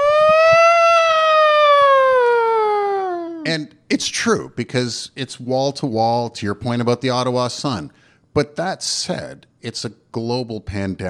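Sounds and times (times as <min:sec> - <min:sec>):
siren wailing with pitch sliding downward: 0:00.0 - 0:03.5
speech: 0:03.5 - 0:11.0.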